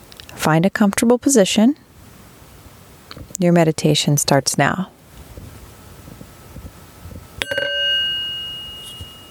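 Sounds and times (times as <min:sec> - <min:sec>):
speech: 0:00.4 - 0:01.8, 0:03.4 - 0:05.0
meditation chime ringing: 0:07.4 - 0:09.2.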